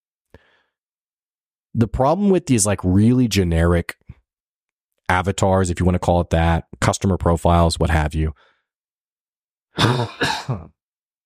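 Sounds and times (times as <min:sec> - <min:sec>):
speech: 0:01.8 - 0:04.1, 0:05.1 - 0:08.5, 0:09.8 - 0:10.8
person coughing: 0:09.8 - 0:10.7
person clearing throat: 0:09.8 - 0:10.8.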